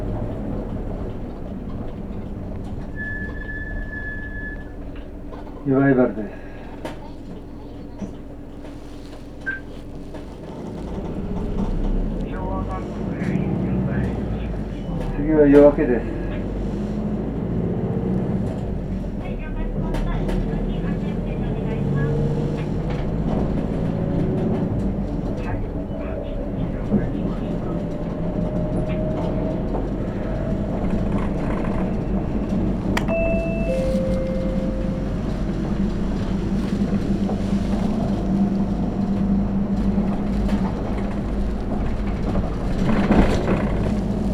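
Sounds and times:
clunks: 0.0s - 44.3s
replacement bus engine idling and pulling away: 0.0s - 44.3s
chimes: 33.1s - 35.3s.

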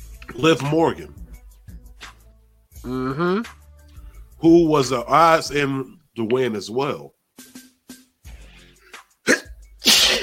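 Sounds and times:
speech: 0.3s - 1.2s, 2.8s - 3.6s, 4.4s - 7.2s
loud sneeze: 9.2s - 10.2s.

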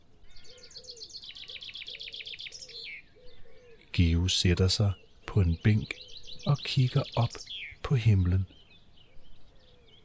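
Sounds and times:
birds trilling on a sunny early-spring day: 0.0s - 10.0s
speech: 4.0s - 8.6s.

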